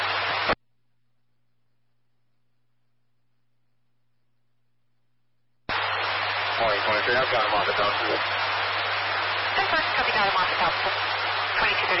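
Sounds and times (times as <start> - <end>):
harsh radio static: 0.0 - 0.6, 5.7 - 11.9
faint low hum: 0.0 - 11.9
speech: 7.1 - 8.4, 9.6 - 11.9.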